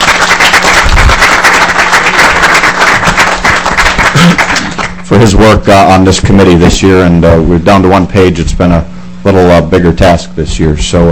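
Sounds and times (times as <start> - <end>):
group applauding in a committee meeting: 0.0 - 5.0
speech: 5.1 - 11.0.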